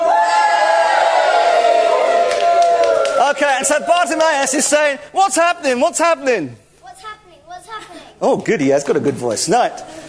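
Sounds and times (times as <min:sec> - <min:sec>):
group of voices acting out a passing crowd cheering: 0:00.0 - 0:04.7
speech: 0:03.2 - 0:06.6, 0:08.2 - 0:10.0.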